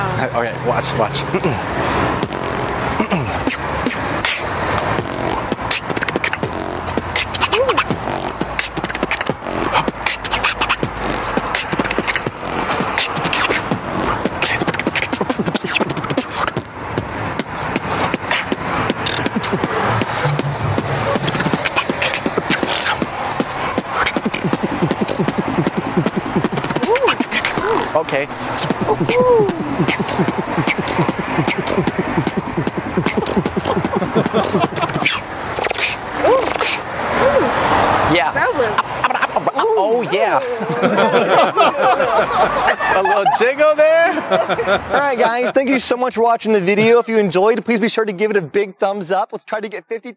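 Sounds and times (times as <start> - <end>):
speech: 0.2 - 2.2, 3.1 - 5.6, 28.0 - 30.4, 43.4 - 50.1
voice mimicking the deep thumping bass of a car stereo: 0.9 - 37.6
scratchy mouth noises: 1.4 - 38.0
laughter: 19.0 - 22.3, 24.3 - 37.6, 38.6 - 45.8.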